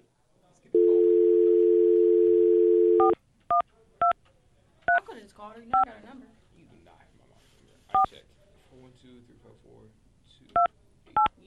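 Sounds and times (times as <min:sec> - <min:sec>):
telephone dial tone humming: 0:00.8 - 0:03.2
telephone keypad beeps: 0:00.8 - 0:04.2
speech: 0:05.4 - 0:07.0, 0:07.9 - 0:11.4.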